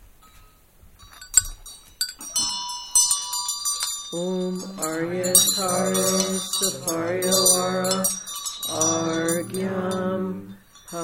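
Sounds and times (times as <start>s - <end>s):
Tibetan ritual vajra bell ringing: 1.0s - 11.0s
speech: 4.1s - 11.0s.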